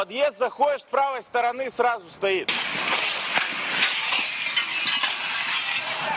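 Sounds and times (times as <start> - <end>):
speech: 0.1 - 3.1
window glass shattered by a sonic boom: 2.5 - 6.1.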